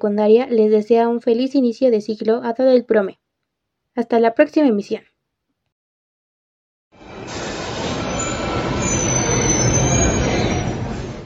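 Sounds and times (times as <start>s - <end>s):
speech: 0.0s - 3.2s, 4.0s - 5.1s
metro train arriving at a station rumbling: 7.0s - 11.2s
metro train wheels squealing on rails: 7.0s - 11.2s.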